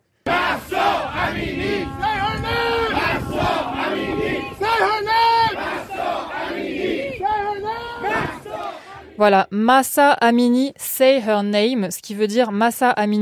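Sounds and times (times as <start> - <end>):
street crowd of supporters chanting in unison: 0.2 - 9.3
speech: 9.2 - 13.2.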